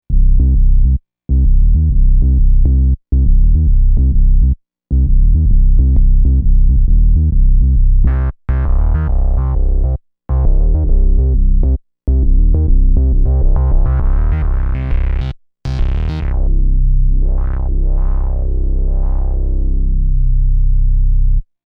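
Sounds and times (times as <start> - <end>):
physical synth bass: 0.1 - 21.5.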